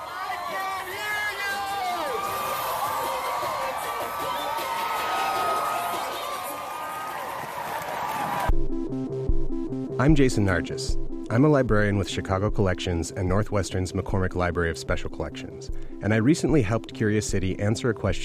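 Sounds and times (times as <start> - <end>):
large outdoor crowd at a Pride Parade in Chicago cheering and whooping: 0.0 - 8.5
overlapping shouting voices: 0.0 - 8.5
music: 2.2 - 18.2
speech: 10.0 - 18.2.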